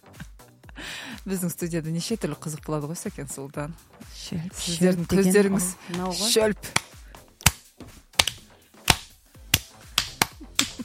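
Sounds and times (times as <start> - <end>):
speech: 1.2 - 6.9
hand claps in a studio: 5.8 - 7.6, 8.2 - 10.8.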